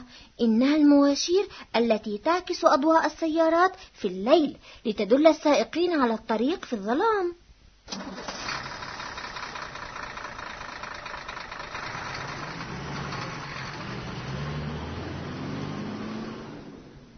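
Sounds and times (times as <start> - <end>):
speech: 0.4 - 8.4
car engine turning over and idling loudly: 7.9 - 17.1.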